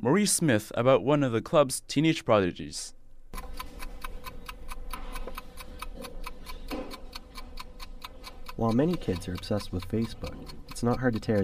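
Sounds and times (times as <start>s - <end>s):
speech: 0.0s - 3.6s, 8.6s - 11.4s
chess clocks ticking at a chess club in Scarborough Ontario Canada: 3.3s - 11.4s.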